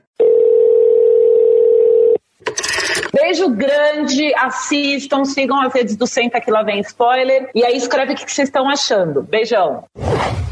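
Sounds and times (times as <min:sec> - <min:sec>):
steady telephone tone: 0:00.2 - 0:03.1
speech: 0:03.3 - 0:10.4.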